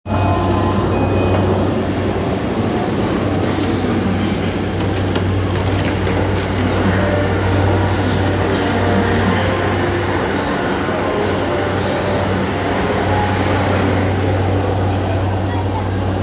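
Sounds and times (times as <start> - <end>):
JR Yamanote Line train at Hamamatsucho counterclockwise: 0.0 - 16.2.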